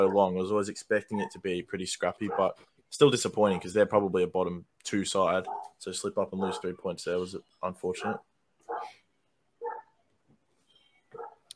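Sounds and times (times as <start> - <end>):
speech: 0.0 - 9.0
dog barking: 1.2 - 1.4, 2.2 - 2.6, 3.5 - 3.8, 5.4 - 5.8, 6.4 - 6.7, 8.0 - 9.0, 9.6 - 10.0, 11.1 - 11.4.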